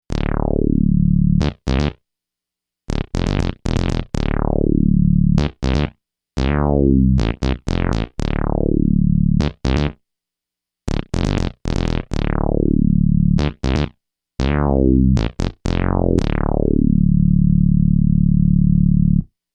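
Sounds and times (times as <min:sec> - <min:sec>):
resonator bass: 0:00.1 - 0:02.0, 0:02.9 - 0:10.0, 0:10.9 - 0:19.3.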